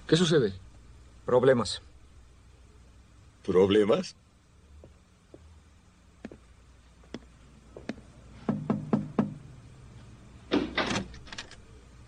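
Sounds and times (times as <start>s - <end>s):
speech: 0.1s - 0.7s, 1.3s - 1.9s, 3.4s - 4.2s
knocking on a door: 8.5s - 9.4s.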